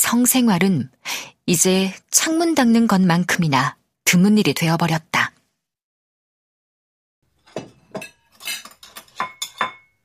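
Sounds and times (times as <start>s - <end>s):
speech: 0.1s - 5.1s
clean cups set down on a hard counter beside a coffee machine: 7.4s - 10.0s.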